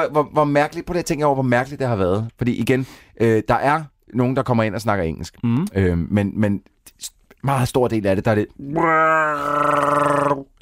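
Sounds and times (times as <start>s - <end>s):
speech: 0.0s - 10.6s
Wookiee roar made from bear sounds: 8.6s - 10.6s.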